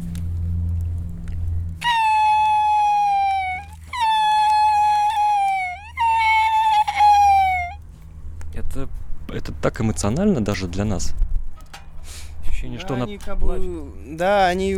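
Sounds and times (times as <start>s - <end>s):
low steady hum: 0.0s - 14.7s
loon wailing cry after missing a fish: 1.8s - 7.8s
speech: 9.6s - 11.3s, 12.9s - 14.7s.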